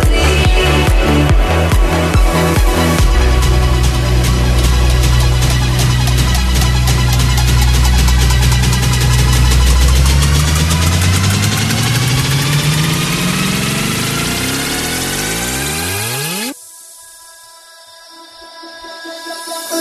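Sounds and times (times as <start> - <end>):
engine running and revving: 0.0 - 16.6.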